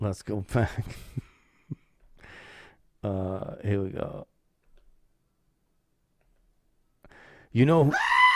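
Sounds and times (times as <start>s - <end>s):
speech: 0.0s - 1.2s, 3.0s - 4.3s, 7.5s - 8.2s
goat bleating: 7.8s - 8.3s.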